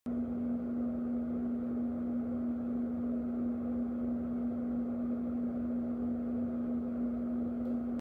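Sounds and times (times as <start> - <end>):
ceiling fan: 0.1 - 7.9.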